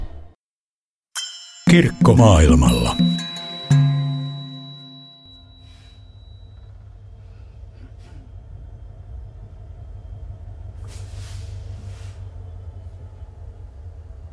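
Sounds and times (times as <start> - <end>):
speech: 1.7 - 3.2
brief tonal hum: 1.9 - 5.7
steady low rumble inside a moving passenger train carriage at night: 6.6 - 14.3.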